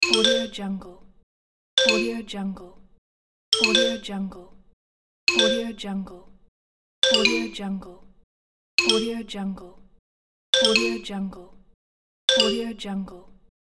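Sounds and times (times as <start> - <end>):
xylophone alert: 0.0 - 0.6, 1.8 - 2.2, 3.6 - 4.1, 5.3 - 5.8, 7.0 - 7.6, 8.8 - 9.2, 10.6 - 11.1, 12.3 - 12.7.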